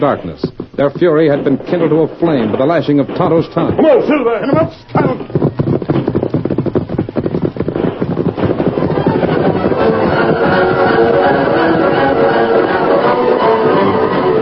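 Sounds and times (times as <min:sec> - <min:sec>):
speech: 0:00.0 - 0:05.4
horses galloping in nighttime horseback chase: 0:00.0 - 0:14.4
scattered sharp gunshots during nighttime horseback chase: 0:00.8 - 0:13.0.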